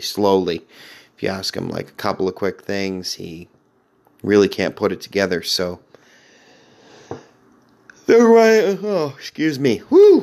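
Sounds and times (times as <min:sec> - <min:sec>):
speech: 0:00.0 - 0:03.6, 0:04.2 - 0:05.9, 0:08.1 - 0:10.2
quiet breathing: 0:00.6 - 0:01.2, 0:05.9 - 0:07.5
person yawning: 0:09.9 - 0:10.2.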